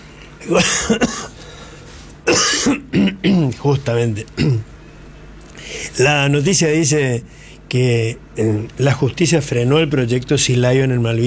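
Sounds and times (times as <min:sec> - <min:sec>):
person clearing throat: 0:00.4 - 0:01.4, 0:02.3 - 0:03.6, 0:04.4 - 0:04.7
person coughing: 0:00.4 - 0:01.4, 0:02.3 - 0:03.6, 0:04.4 - 0:04.7
speech: 0:00.4 - 0:01.4, 0:02.3 - 0:04.7, 0:05.7 - 0:11.2.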